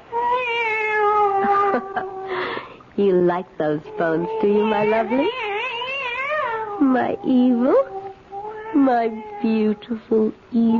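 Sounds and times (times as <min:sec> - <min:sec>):
cat meowing: 0:00.2 - 0:02.4, 0:04.0 - 0:09.5
speech: 0:03.0 - 0:05.6, 0:06.8 - 0:08.0, 0:08.7 - 0:10.7.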